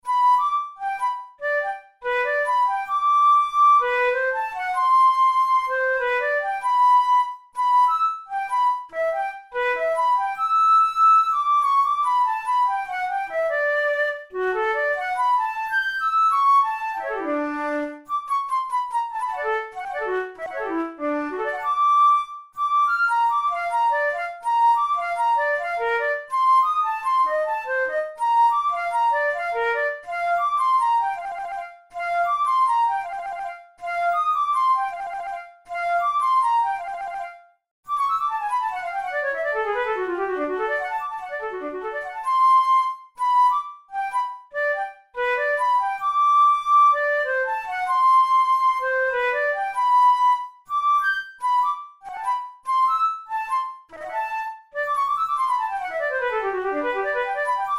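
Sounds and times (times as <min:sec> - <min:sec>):
Boehm flute playing studies: 0:00.0 - 0:57.7.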